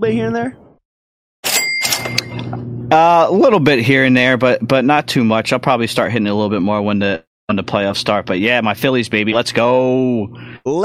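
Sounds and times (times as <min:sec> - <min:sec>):
speech: 0:00.0 - 0:00.6, 0:02.0 - 0:10.8
bell rung hard: 0:01.4 - 0:02.5.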